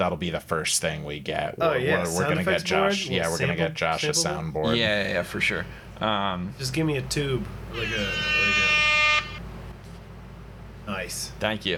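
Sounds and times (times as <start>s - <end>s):
speech: 0.0s - 8.6s, 11.0s - 11.7s
air horn blast: 7.7s - 9.4s.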